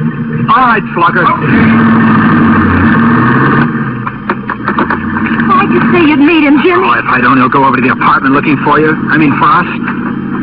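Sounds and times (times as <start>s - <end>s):
car engine droning while driving along the ocean: 0.0s - 10.4s
speech: 0.6s - 2.2s, 5.9s - 10.4s
faint clicks and bumps: 3.6s - 6.1s.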